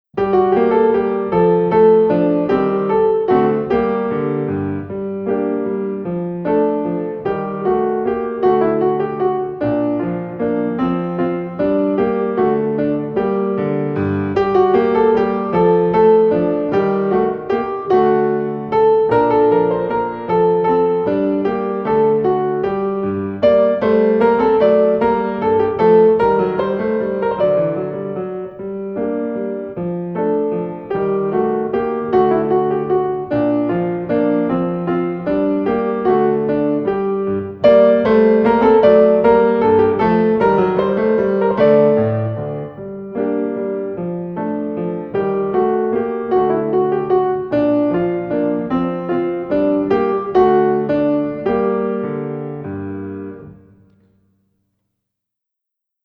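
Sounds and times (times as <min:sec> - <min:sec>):
minuet accompaniment music: 0:00.1 - 0:54.2.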